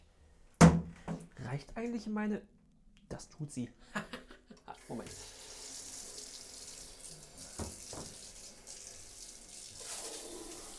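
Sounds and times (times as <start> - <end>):
speech: 1.5 - 4.1, 4.9 - 5.4
laughter: 3.9 - 4.9
shower head spraying water in a tiny bathroom: 4.8 - 10.7.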